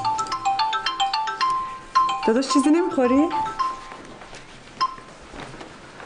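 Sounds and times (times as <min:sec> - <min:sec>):
phone ringing with a bright warbling electronic ringtone: 0:00.0 - 0:04.0, 0:04.8 - 0:05.2
speech: 0:02.3 - 0:03.5.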